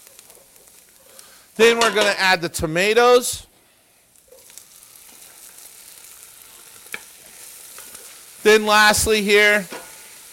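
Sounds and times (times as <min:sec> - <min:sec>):
garlic sautéing in a pan: 0:00.0 - 0:10.3
speech: 0:01.6 - 0:03.5, 0:08.4 - 0:09.8.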